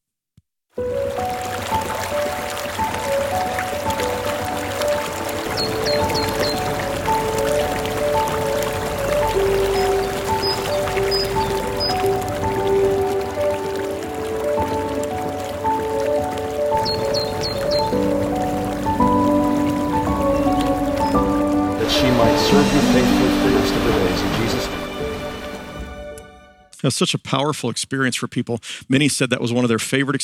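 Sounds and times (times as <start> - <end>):
speech: 0.8 - 1.0, 26.9 - 30.2
river rushing and gurgling at ruins: 0.8 - 26.5
faint high bird chirps: 5.5 - 6.8, 9.7 - 12.1, 16.8 - 18.0, 20.2 - 21.4.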